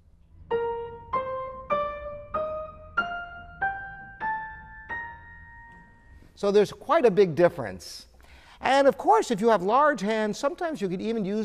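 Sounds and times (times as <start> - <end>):
piano octaves in the right hand played with thumb and fifth finger: 0.0 - 7.1
speech: 6.4 - 11.4.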